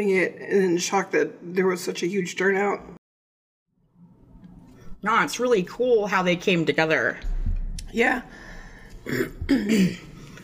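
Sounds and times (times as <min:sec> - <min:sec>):
speech: 0:00.0 - 0:03.0, 0:05.0 - 0:07.3, 0:07.9 - 0:08.4, 0:09.0 - 0:10.1
person coughing to clear a tickle in the throat: 0:09.0 - 0:10.4.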